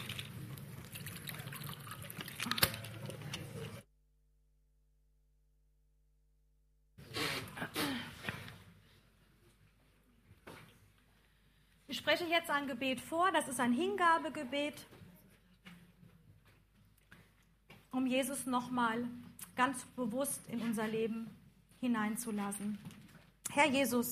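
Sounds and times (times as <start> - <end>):
water pouring into a glass: 0.0 - 3.8
speech: 12.1 - 15.0, 18.0 - 23.0, 23.6 - 24.1.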